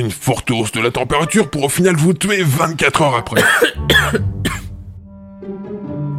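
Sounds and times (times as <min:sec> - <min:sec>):
speech: 0:00.0 - 0:04.6
light dry cough: 0:03.3 - 0:04.7.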